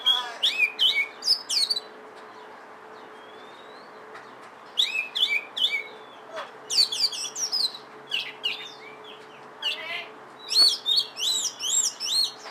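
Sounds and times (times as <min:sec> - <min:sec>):
Oriental magpie-robin song: 0:00.0 - 0:12.4.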